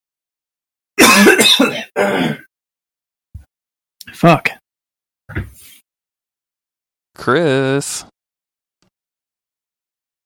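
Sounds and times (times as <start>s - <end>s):
person clearing throat in harsh rasping bursts: 1.0s - 2.5s
speech: 1.2s - 2.4s, 4.2s - 4.6s, 7.2s - 8.1s.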